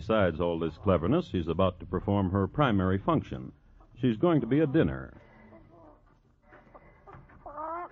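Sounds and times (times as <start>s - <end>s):
speech: 0.0s - 5.3s
fat hen clucking: 3.7s - 7.9s.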